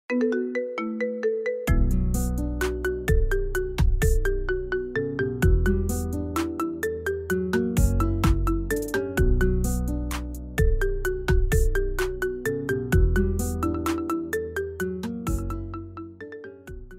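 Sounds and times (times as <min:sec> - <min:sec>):
marimba ringtone: 0:00.1 - 0:16.9.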